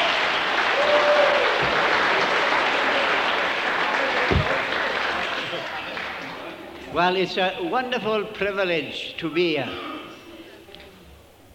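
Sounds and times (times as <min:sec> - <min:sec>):
large crowd applauding: 0:00.0 - 0:06.6
speech: 0:07.0 - 0:09.9.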